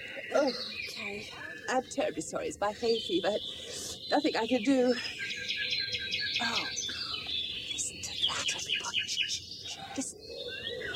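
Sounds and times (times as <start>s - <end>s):
nightingale singing: 0.0s - 10.9s
speech: 0.4s - 5.2s.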